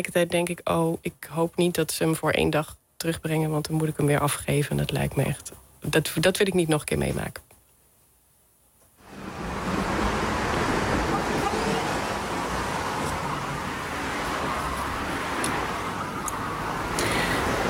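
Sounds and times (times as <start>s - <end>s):
speech: 0.0s - 7.5s
traffic rushing past on an 80 km/h road between Deventer and Zutphen: 9.0s - 17.6s.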